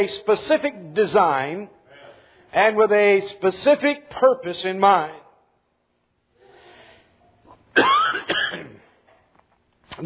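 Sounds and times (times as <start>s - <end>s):
speech: 0.0s - 1.8s, 2.5s - 5.2s, 7.8s - 8.0s
harsh rasping cough: 7.8s - 9.0s.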